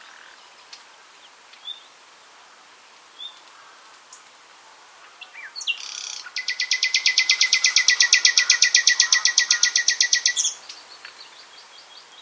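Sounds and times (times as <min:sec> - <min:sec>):
Luscinia megarhynchos common nightingale singing: 0:05.2 - 0:12.2.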